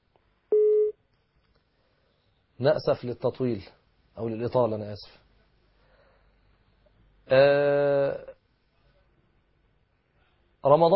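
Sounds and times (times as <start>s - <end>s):
telephone line tone as a call connects: 0.5s - 0.9s
speech: 2.6s - 5.2s, 7.3s - 8.3s, 10.6s - 10.9s.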